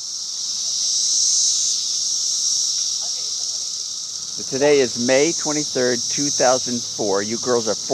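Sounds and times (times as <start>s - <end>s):
periodical cicada chorus buzzing: 0.0s - 7.9s
voices: 3.0s - 7.9s
speech: 4.4s - 7.9s.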